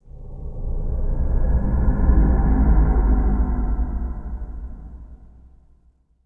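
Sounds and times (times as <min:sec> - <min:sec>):
eerie ambience: 0:00.0 - 0:05.8.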